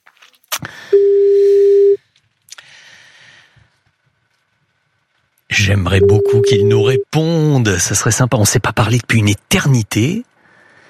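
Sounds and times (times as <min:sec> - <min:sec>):
telephone line tone while a phone number is dialed: 0:00.9 - 0:02.0, 0:06.0 - 0:07.0
speech: 0:05.8 - 0:10.3.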